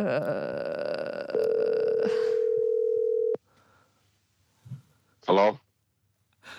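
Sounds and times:
speech: 0:00.0 - 0:00.7, 0:05.3 - 0:05.6
telephone dial tone of an outgoing call: 0:01.4 - 0:03.4.

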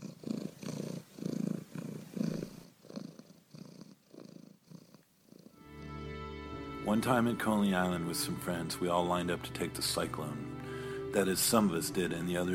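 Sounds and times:
cat purring while falling asleep: 0:00.0 - 0:05.6
speech: 0:06.9 - 0:10.5, 0:11.1 - 0:12.5.

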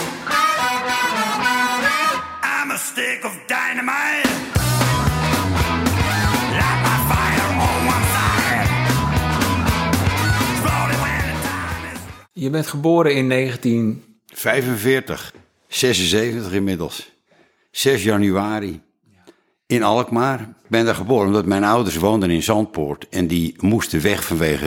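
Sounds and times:
rock band guitars: 0:00.0 - 0:02.5, 0:04.2 - 0:12.3
sung lead vocal in a rock song: 0:00.2 - 0:04.5, 0:05.9 - 0:12.3
speech: 0:03.0 - 0:04.6, 0:12.4 - 0:17.1, 0:17.8 - 0:18.8, 0:19.7 - 0:24.6
driving rock drums: 0:04.2 - 0:12.2
rock band bass: 0:04.5 - 0:12.3.

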